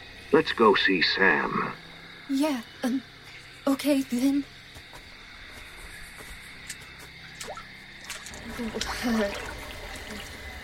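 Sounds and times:
speech: 0.3s - 4.6s, 8.6s - 9.5s
cold water sloshing and splashing as someone wades into a lake: 7.3s - 10.6s.

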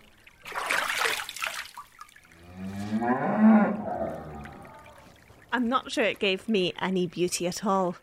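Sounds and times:
water splashing and trickling: 0.0s - 8.0s
cow mooing: 2.4s - 5.0s
speech: 5.6s - 8.0s.

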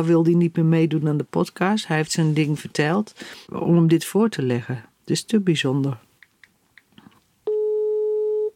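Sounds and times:
speech: 0.0s - 6.1s
telephone ringback tone while calling someone: 7.5s - 8.5s.

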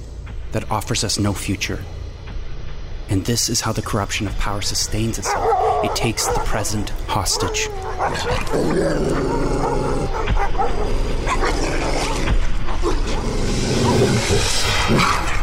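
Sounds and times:
speech: 0.5s - 2.0s, 3.1s - 9.8s, 13.7s - 15.3s
pack of dogs barking and yelping: 5.0s - 14.6s.

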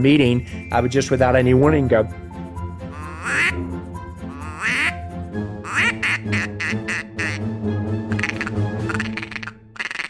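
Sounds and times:
speech: 0.0s - 2.2s
duck call instrument imitating mallard quacks: 2.9s - 3.6s, 4.4s - 5.0s, 5.6s - 7.5s, 8.1s - 10.0s.

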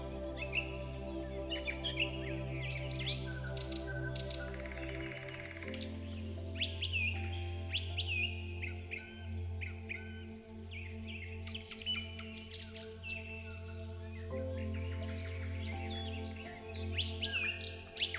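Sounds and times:
birds singing and chirping in a forest: 0.0s - 18.1s
soft relaxing music drone: 0.0s - 18.1s.

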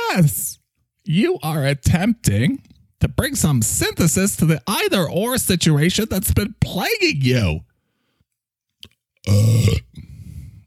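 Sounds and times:
speech: 0.1s - 0.4s, 1.0s - 7.7s, 9.2s - 10.1s
loud deep belch: 9.2s - 10.1s.

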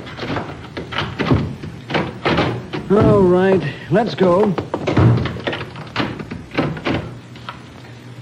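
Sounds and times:
door being pushed shut and locked: 0.2s - 3.3s, 4.8s - 7.1s
speech: 2.9s - 5.2s.

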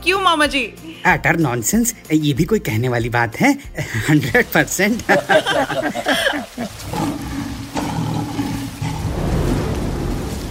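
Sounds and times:
speech: 0.0s - 7.3s
laughter: 3.8s - 6.9s
lion roaring with a heavy low growl: 6.7s - 10.2s.

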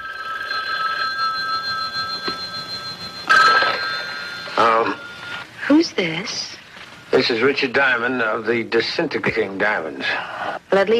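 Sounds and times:
telephone bell ringing as a wake-up call: 0.0s - 5.9s
speech: 5.9s - 10.9s.

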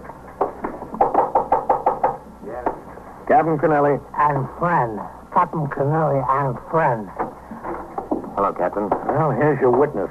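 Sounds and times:
knocking on a wooden office door in a second-floor office: 0.4s - 2.8s, 7.2s - 9.9s
speech: 3.3s - 7.2s, 8.4s - 10.0s.

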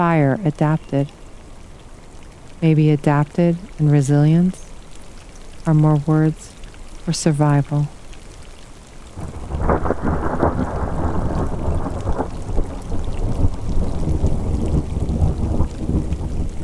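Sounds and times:
speech: 0.0s - 1.2s, 2.6s - 4.6s, 5.6s - 8.0s
heavy rain: 0.0s - 16.6s
gusting wind: 9.2s - 16.6s
low rumbling thunder: 9.2s - 16.6s.

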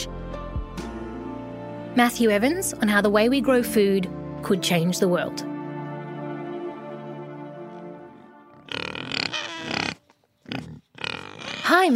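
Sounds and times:
speech: 2.0s - 5.5s
pigs grunting: 7.6s - 11.9s
pigs squealing and snorting: 8.5s - 11.9s.

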